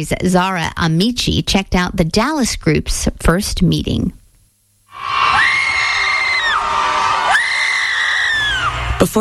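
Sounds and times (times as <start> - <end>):
speech: 0.0 - 4.2, 9.0 - 9.1
about 200 people screaming together outdoors in a park: 4.9 - 9.1.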